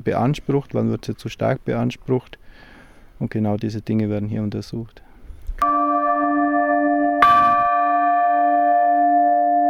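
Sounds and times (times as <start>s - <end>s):
speech: 0.0s - 5.7s
large cracked church bell ringing with warbling tone: 5.6s - 9.6s.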